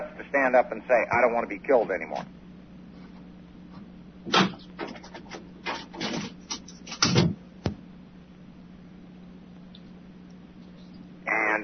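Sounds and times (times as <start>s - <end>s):
speech: 0.3s - 2.4s, 4.2s - 4.9s
chair being moved, scraping and bumping: 4.3s - 7.4s.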